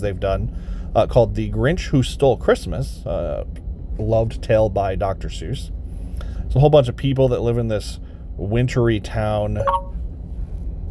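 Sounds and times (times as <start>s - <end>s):
speech: 0.0s - 5.8s, 6.5s - 9.9s
low steady rumble: 0.0s - 10.8s
phone notification ding: 9.6s - 10.0s.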